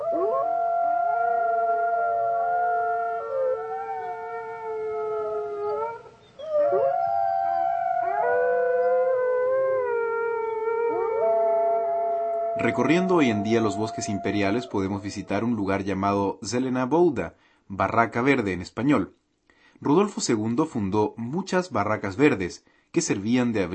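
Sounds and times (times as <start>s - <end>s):
wolves howling: 0.0s - 15.8s
speech: 12.7s - 19.2s, 19.8s - 23.7s.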